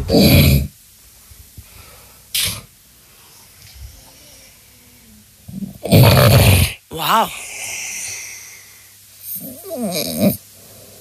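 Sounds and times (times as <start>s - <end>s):
man of about 30 snoring in his sleep, wearing an anti-snoring mouthguard: 0.0s - 0.7s, 5.5s - 8.4s, 9.3s - 11.0s
speech: 0.0s - 0.7s, 7.0s - 7.4s.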